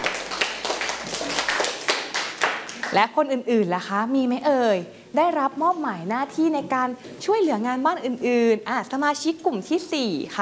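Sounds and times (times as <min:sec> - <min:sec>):
children clapping for a classmate: 0:00.0 - 0:03.0
speech: 0:02.9 - 0:10.4.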